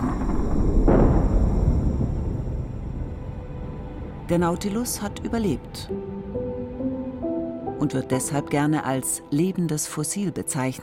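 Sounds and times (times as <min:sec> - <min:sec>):
meteorite impact explosion: 0:00.0 - 0:07.3
speech: 0:04.3 - 0:06.4, 0:07.8 - 0:10.8.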